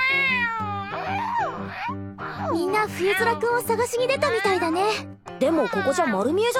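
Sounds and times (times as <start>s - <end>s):
cat meowing: 0.0s - 3.4s, 4.1s - 4.8s
speech: 0.6s - 6.5s.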